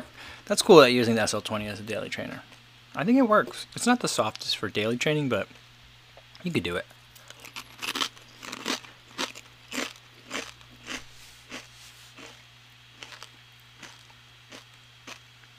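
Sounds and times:
speech: 0.5 - 5.6, 6.4 - 7.0
person biting and chewing a crisp chip: 7.2 - 12.4, 13.0 - 15.3.

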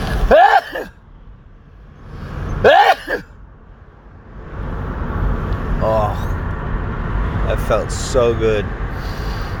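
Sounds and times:
low rumble of a moving car: 0.0 - 9.5
person sneezing: 2.6 - 3.3
speech: 7.7 - 9.2.

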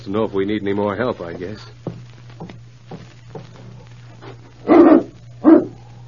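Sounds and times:
speech: 0.0 - 1.8
low steady hum: 0.0 - 6.0
dog barking: 4.6 - 5.8.

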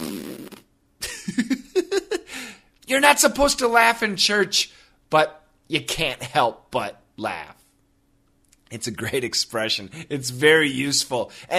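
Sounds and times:
loud wet sputtering fart: 0.0 - 0.7
laughter: 1.0 - 2.3
speech: 2.9 - 7.6, 8.7 - 11.5.

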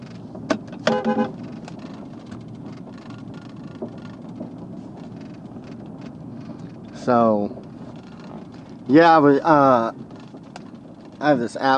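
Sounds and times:
engine and road rumble inside a moving vehicle: 0.0 - 11.7
car horn honk at people smoking on a back porch: 0.8 - 1.4
speech: 7.1 - 7.6, 8.9 - 10.1, 11.2 - 11.7.

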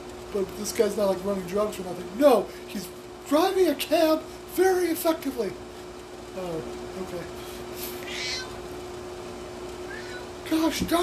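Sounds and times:
rustling hiss: 0.0 - 11.0
speech: 0.3 - 5.6, 6.4 - 7.4, 10.5 - 11.0
male cat meowing: 8.0 - 8.6, 9.9 - 10.4.

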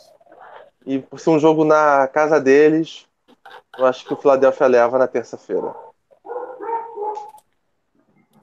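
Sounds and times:
speech: 0.9 - 5.8
dog yelping and howling: 5.6 - 7.4.

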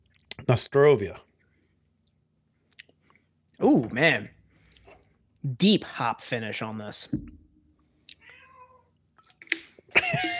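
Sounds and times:
speech: 0.4 - 1.3, 3.6 - 4.4, 5.4 - 7.4
cat meowing: 8.2 - 8.9.

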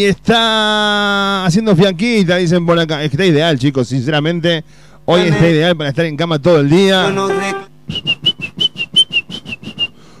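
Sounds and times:
speech: 0.0 - 8.2
brief buzzy tone: 5.2 - 5.7, 7.0 - 7.7
person whistling a bouncy run of notes: 7.3 - 10.0.

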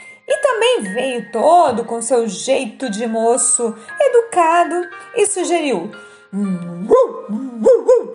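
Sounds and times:
speech: 0.8 - 7.5
dog barking: 6.9 - 8.1.

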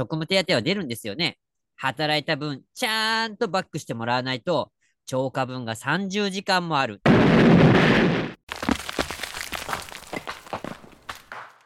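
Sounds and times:
speech: 0.0 - 8.2
loud booming cartoonish explosion: 7.0 - 8.4
crackling rattling debris-like noises: 7.8 - 11.6.

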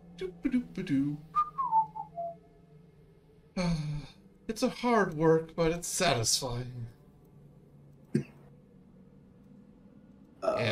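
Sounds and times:
speech: 0.2 - 1.3, 3.6 - 7.0
person whistling a tune: 1.4 - 2.4.

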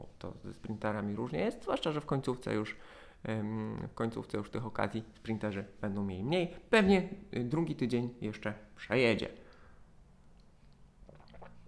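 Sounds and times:
speech: 0.2 - 9.4
sipping from a cup: 10.5 - 11.6.

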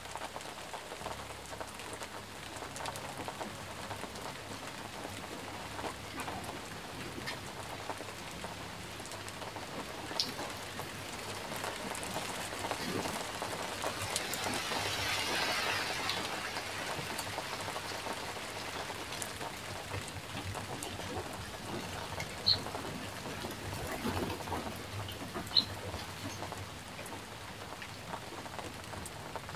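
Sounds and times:
rain falling steadily and densely: 0.0 - 29.5
sharper water drips: 5.7 - 29.2.

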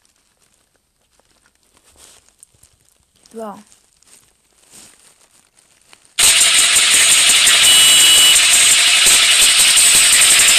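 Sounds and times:
speech: 3.3 - 3.8
motorcycle engine starting and roaring: 6.2 - 10.5.

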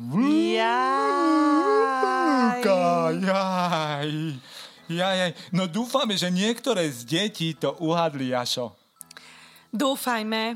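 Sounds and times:
wolves howling: 0.2 - 3.2
speech: 2.6 - 8.8, 9.7 - 10.5.

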